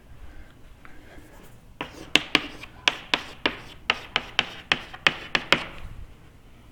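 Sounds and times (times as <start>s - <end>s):
handwriting an equation: 1.8s - 5.8s.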